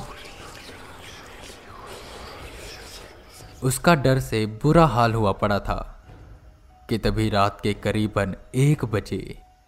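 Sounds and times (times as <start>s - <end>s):
eerie breathy whispering voice: 0.0s - 4.1s
speech: 3.6s - 5.9s, 6.9s - 9.4s.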